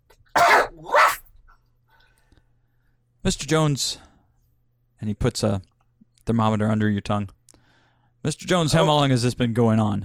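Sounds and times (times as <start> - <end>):
patient with a bad lingering illness coughing hard at a doctor's visit: 0.4 - 1.1
speech: 3.2 - 4.1, 5.0 - 5.7, 6.3 - 7.4, 8.2 - 10.0.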